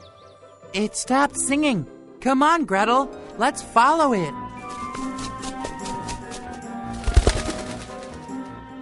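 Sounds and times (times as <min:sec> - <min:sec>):
soft music: 0:00.0 - 0:08.8
speech: 0:00.7 - 0:04.4
white bird flapping wings taking off: 0:04.6 - 0:08.5.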